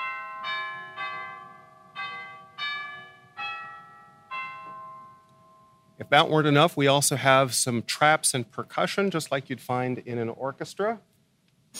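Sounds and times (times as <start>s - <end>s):
orchestral tubular chimes struck: 0.0s - 6.7s
speech: 6.0s - 11.1s.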